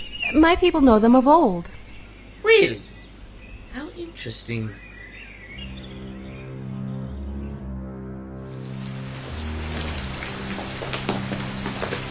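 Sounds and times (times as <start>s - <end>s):
speech: 0.3s - 1.8s, 2.5s - 2.9s, 4.2s - 4.8s
low sustained musical tone: 4.8s - 11.9s
rain pattering: 8.4s - 12.0s
drips popping: 8.7s - 12.0s.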